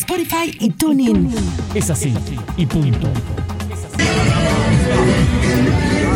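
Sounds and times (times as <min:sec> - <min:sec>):
speech: 0:00.2 - 0:05.9
loud dense music outdoors while leaving a football stadium: 0:01.1 - 0:06.1
noisy crowd leaving a football stadium: 0:03.6 - 0:06.1.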